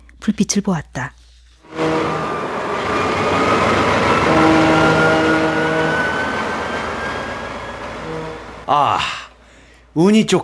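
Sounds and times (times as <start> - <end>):
speech: 0.2 - 1.2, 8.7 - 9.2, 10.0 - 10.4
train rumbling through a station: 1.6 - 9.5
whining, squealing train tones: 2.2 - 8.6.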